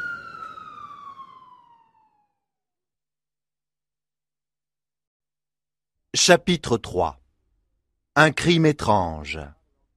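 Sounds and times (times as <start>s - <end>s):
police siren wailing: 0.0s - 2.6s
speech: 6.1s - 7.2s, 8.2s - 9.6s.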